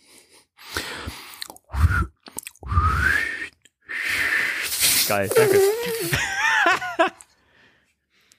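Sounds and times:
person whistling loudly and breathily: 1.8 - 4.7
speech: 5.1 - 6.8
laughter: 5.3 - 7.2.

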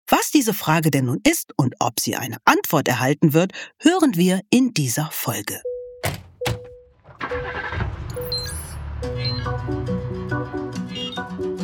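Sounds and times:
speech: 0.3 - 6.2
taxi engine starting and driving off: 7.0 - 10.6.

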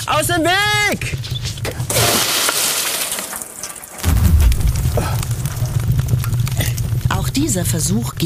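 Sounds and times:
speech: 0.0 - 1.3, 7.4 - 8.2
bucket of water splashing onto burning stones in a cargo hold: 1.7 - 8.2
deep rumbling whoosh of fire roaring: 3.4 - 8.2.

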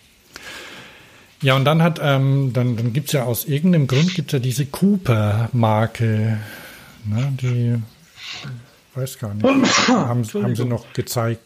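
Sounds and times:
speech: 1.4 - 11.4
person sneezing: 3.9 - 4.2, 8.2 - 8.6, 9.4 - 10.2.

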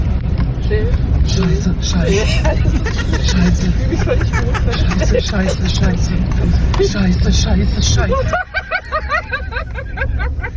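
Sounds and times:
car engine rumbling while driving through a water ford: 0.0 - 10.5
speech: 0.7 - 8.5
excited voices talking: 1.9 - 10.5
laughter: 2.0 - 10.5.

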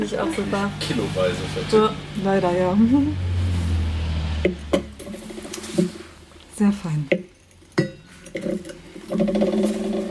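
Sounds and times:
speech: 0.0 - 3.3, 4.4 - 4.9, 6.6 - 7.3, 8.4 - 10.1
glass clinking: 7.1 - 9.9.

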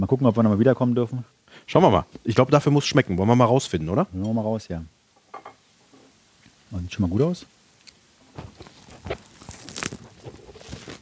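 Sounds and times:
speech: 0.0 - 5.0, 6.7 - 7.6, 8.4 - 9.2
crunchy bites into a burger: 8.3 - 11.0
wet chewing of a burger: 8.4 - 11.0.

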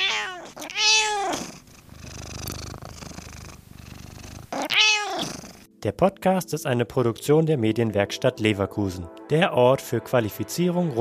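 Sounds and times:
cat meowing: 0.0 - 1.6, 4.5 - 5.6
cat purring: 0.0 - 5.7
speech: 5.8 - 10.9.

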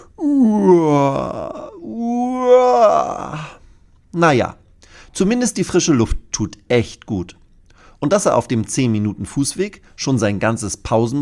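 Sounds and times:
tired person yawning while walking along a footpath: 0.0 - 3.6
speech: 4.2 - 4.6, 5.2 - 7.4, 8.0 - 11.2.

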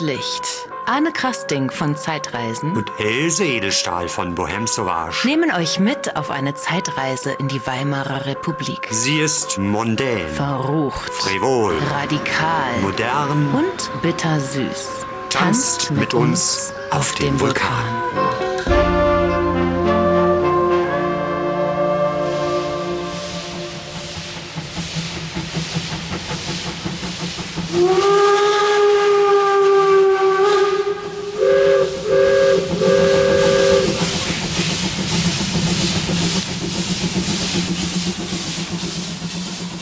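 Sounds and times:
speech: 0.0 - 18.8
steam locomotive whistle on a train trip in Breslau: 11.3 - 16.8, 17.7 - 24.4, 27.7 - 34.4
steady loud hiss of escaping steam: 22.3 - 30.1, 30.9 - 39.8.

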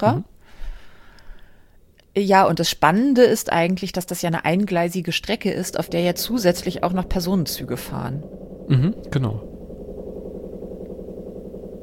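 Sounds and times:
speech: 0.0 - 0.3, 2.2 - 9.5
washing machine running a 60-degree wash: 3.4 - 11.8.

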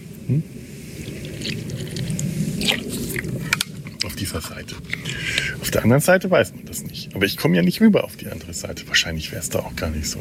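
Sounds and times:
low steady rumble: 0.0 - 10.1
speech: 0.3 - 0.6, 4.2 - 10.1
person gulping water: 1.0 - 4.1.

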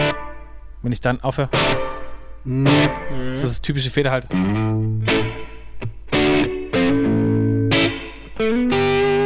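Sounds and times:
distorted electric guitar chords with reverb before the amplifier: 0.0 - 0.4, 1.5 - 3.5, 4.3 - 9.2
speech: 0.8 - 5.9.

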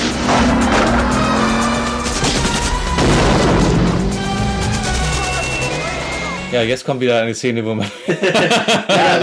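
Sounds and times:
crackling impacts in an action film soundtrack: 0.0 - 6.5
rumbling engines in an action film soundtrack: 0.0 - 6.8
grenade explosion in an action film soundtrack: 2.1 - 6.1
speech: 6.6 - 9.2
laughter: 7.8 - 9.2.

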